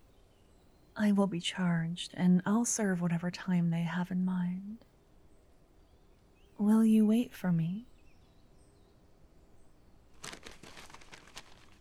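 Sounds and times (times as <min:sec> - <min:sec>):
speech: 0:01.0 - 0:04.9, 0:06.6 - 0:07.9
paper letter crinkling as it is handled: 0:10.1 - 0:11.7.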